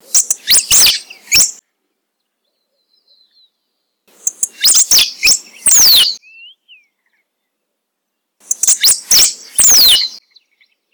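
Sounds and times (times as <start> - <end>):
cotorra de bañado parakeet: 0.0 - 1.6, 4.1 - 6.2, 8.4 - 10.2.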